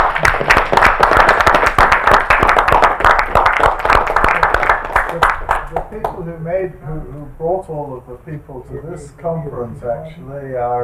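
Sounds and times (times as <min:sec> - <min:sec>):
conference audience applause: 0:00.0 - 0:05.9
speech: 0:06.7 - 0:10.8.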